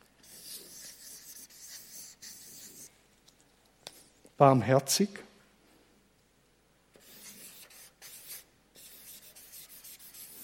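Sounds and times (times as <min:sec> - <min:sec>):
pen writing quickly on paper: 0:00.2 - 0:02.9, 0:07.0 - 0:10.4
speech: 0:04.4 - 0:05.2.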